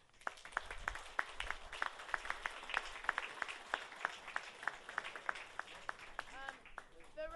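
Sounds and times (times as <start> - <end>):
audience applauding with rhythmic clapping: 0.0 - 7.2.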